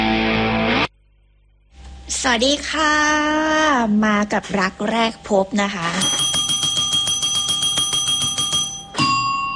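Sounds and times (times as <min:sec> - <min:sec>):
speech: 0:02.2 - 0:06.3
hand-pressed bell ringing to call animals: 0:06.0 - 0:09.5.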